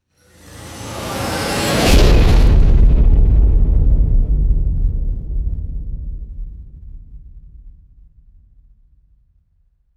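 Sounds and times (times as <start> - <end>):
designed cinematic metallic riser: 0.2 - 3.2
designed cinematic heavy impact: 0.2 - 4.6.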